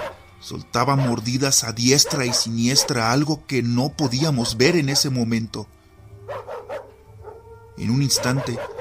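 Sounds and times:
dog barking intensely: 0.0s - 0.2s, 0.9s - 3.2s, 4.8s - 5.2s, 6.2s - 8.7s
speech: 0.4s - 6.5s, 7.8s - 8.7s.

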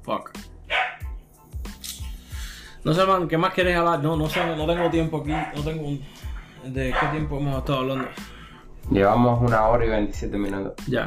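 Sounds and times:
speech: 0.0s - 0.5s, 2.8s - 11.0s
dog barking: 0.7s - 1.1s, 4.2s - 5.9s, 6.8s - 7.3s, 7.9s - 8.2s.

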